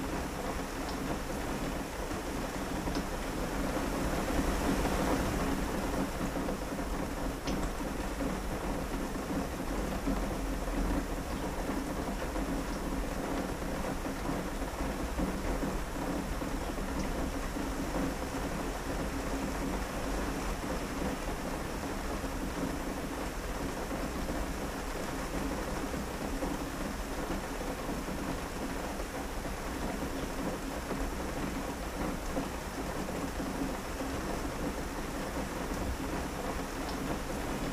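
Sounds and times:
dense midday rain pattering against windows: 0:00.0 - 0:37.7.

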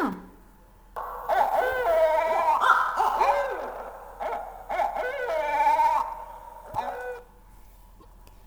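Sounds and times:
owl hooting and wailing: 0:01.0 - 0:07.3.

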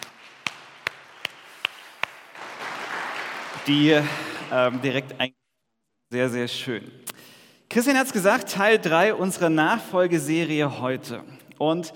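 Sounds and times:
sharp hand claps: 0:00.0 - 0:05.0
soft dense applause from a small audience: 0:00.0 - 0:05.0
speech: 0:03.7 - 0:05.4, 0:06.1 - 0:07.1, 0:07.7 - 0:11.9.

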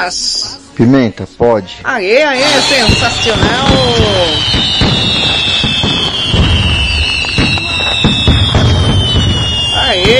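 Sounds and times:
speech: 0:00.0 - 0:05.1
fireworks crackling and bursting: 0:02.4 - 0:10.1
shrill whistling rockets: 0:02.4 - 0:10.1.

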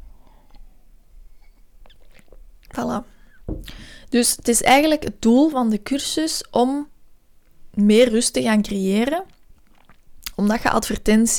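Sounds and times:
faint hiss: 0:00.0 - 0:08.4
person sipping a drink: 0:01.4 - 0:02.5, 0:09.3 - 0:10.0
speech: 0:02.8 - 0:06.9, 0:07.8 - 0:09.3, 0:10.4 - 0:11.3.

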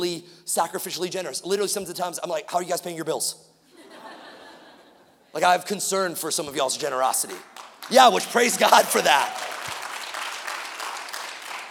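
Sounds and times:
speech: 0:00.0 - 0:03.5, 0:05.3 - 0:09.8
crowd clapping: 0:07.2 - 0:11.7.

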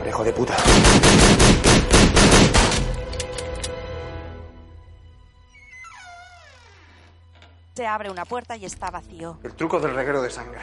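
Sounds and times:
speech: 0:00.2 - 0:01.5, 0:07.8 - 0:10.6
gunshots fired into the doors of a small white cupboard in a hallway: 0:00.6 - 0:03.0.

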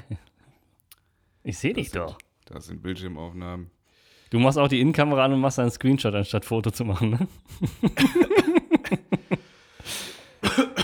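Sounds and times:
speech: 0:01.5 - 0:09.0
laughter: 0:07.2 - 0:09.4
harsh coughing: 0:08.0 - 0:09.2, 0:09.9 - 0:10.8
breathy exhale: 0:09.4 - 0:10.4.

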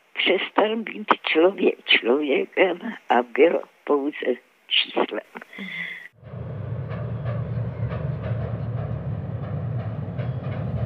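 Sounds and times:
speech: 0:00.3 - 0:06.4
special unscheduled transport train rumbling along rails: 0:06.2 - 0:10.8.

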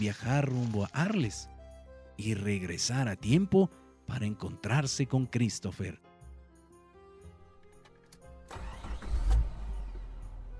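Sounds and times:
speech: 0:00.0 - 0:01.6, 0:02.2 - 0:06.1
car engine starting and idling: 0:08.2 - 0:10.5.

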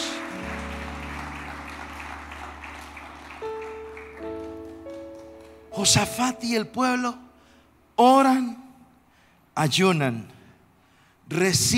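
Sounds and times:
crowd applauding: 0:00.0 - 0:06.3
sustained keyboard chords: 0:00.0 - 0:07.4
speech: 0:05.8 - 0:07.2, 0:08.0 - 0:08.6, 0:09.6 - 0:10.4, 0:11.3 - 0:11.7.

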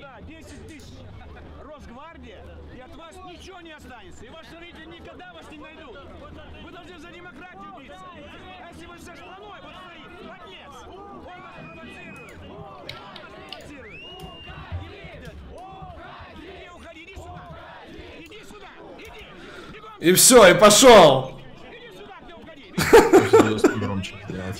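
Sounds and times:
speech: 0:01.8 - 0:13.1, 0:20.0 - 0:21.3
crowd heckling a politician: 0:20.0 - 0:21.4, 0:22.8 - 0:24.2
loud individual shouts: 0:20.0 - 0:21.4
laughter: 0:22.8 - 0:24.5.

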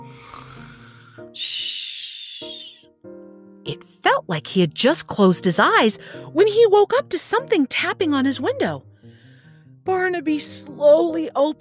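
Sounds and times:
gentle snoring: 0:00.0 - 0:01.2
speech: 0:03.7 - 0:08.9, 0:09.8 - 0:11.6.

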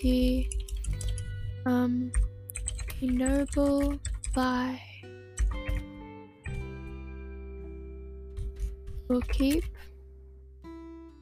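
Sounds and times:
speech: 0:00.0 - 0:00.6, 0:01.6 - 0:02.3, 0:03.0 - 0:04.9, 0:09.1 - 0:09.8
computer keyboard typing during essay writing: 0:00.3 - 0:01.5, 0:02.1 - 0:04.7, 0:05.4 - 0:05.9.

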